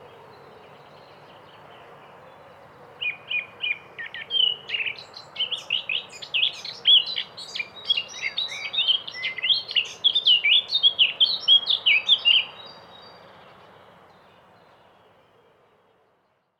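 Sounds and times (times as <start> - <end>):
Eurasian blackcap singing: 3.0 - 13.2.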